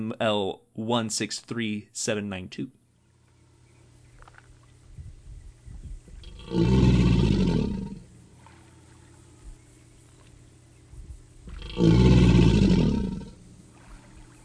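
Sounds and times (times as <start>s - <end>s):
speech: 0.0s - 2.8s, 6.5s - 6.9s
American alligator mating bellow: 6.2s - 9.2s, 11.4s - 14.4s.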